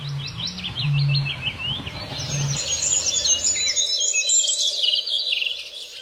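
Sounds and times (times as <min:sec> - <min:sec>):
low hum: 0:00.0 - 0:04.0
European greenfinch singing with twittering trills: 0:00.0 - 0:06.0.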